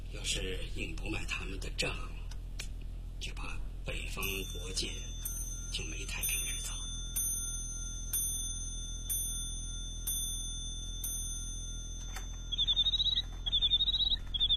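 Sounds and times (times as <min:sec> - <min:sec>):
speech: 0:00.1 - 0:02.2, 0:03.3 - 0:05.2, 0:05.7 - 0:06.8
bird-song chiming clock chimes: 0:04.2 - 0:14.5
bird-song chiming clock chirping trills: 0:04.3 - 0:14.5.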